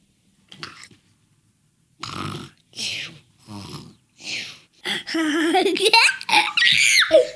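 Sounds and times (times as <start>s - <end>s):
child lying on the floor faking snoring: 2.0s - 5.3s
child giggling with high-pitched squeals: 4.9s - 7.3s.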